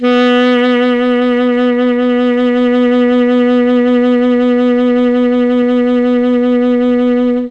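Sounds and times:
alto saxophone: 0.0 - 7.4.

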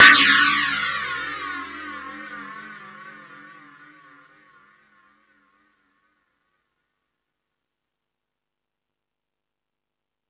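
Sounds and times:
E-MU Pro-Cussion-1 drum machine crash cymbal: 0.0 - 2.6.

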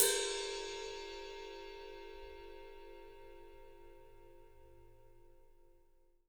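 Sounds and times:
ride cymbal: 0.0 - 3.8.

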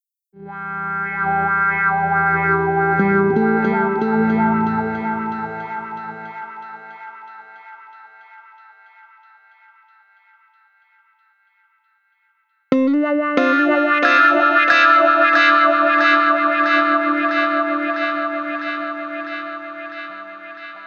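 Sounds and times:
guitar with delay effect: 0.4 - 9.0, 12.7 - 20.8.

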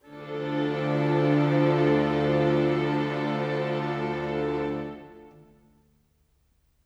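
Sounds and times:
orchestral pad in D minor: 0.0 - 5.5.

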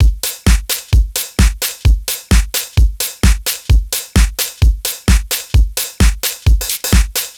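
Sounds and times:
lounge house music loop at 130 BPM: 0.0 - 7.3.

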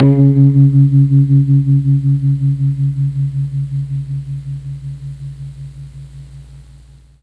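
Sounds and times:
Mellotron MKII guitar note C sharp 2: 0.0 - 6.4.

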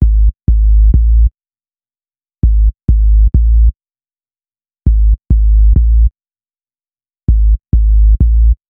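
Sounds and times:
hip-hop bass: 0.0 - 1.3, 2.4 - 3.7, 4.9 - 6.1, 7.3 - 8.6.

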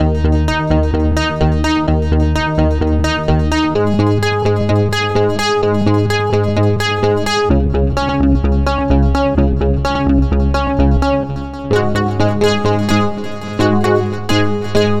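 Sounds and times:
80s bass: 0.0 - 14.9.

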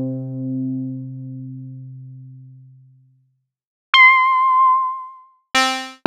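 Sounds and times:
ARP Odyssey synthesizer keys: 4.0 - 6.0.

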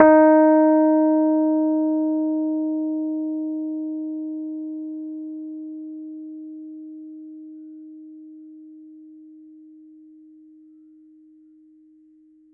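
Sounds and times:
Rhodes Mark II electric piano note D sharp 4: 0.0 - 7.9.

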